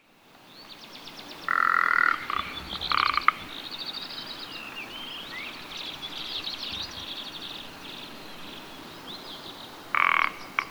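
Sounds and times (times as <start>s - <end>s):
Lagopus mutus rock ptarmigan giving a harsh croaking call: 1.5s - 8.0s.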